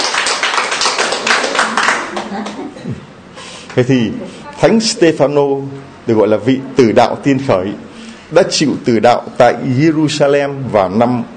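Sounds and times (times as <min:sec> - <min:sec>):
audience applause: 0:00.0 - 0:02.6
speech: 0:03.8 - 0:11.3.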